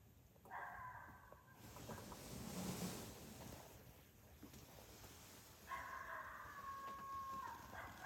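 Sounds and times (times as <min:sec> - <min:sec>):
wind outdoors: 0:00.0 - 0:08.0
coyote challenge howls: 0:00.4 - 0:01.5, 0:05.7 - 0:08.0.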